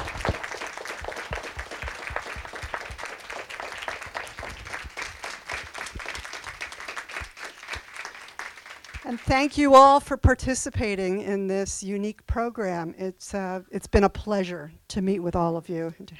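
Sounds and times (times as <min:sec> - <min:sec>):
audience applause: 0:00.0 - 0:09.5
speech: 0:09.1 - 0:16.1.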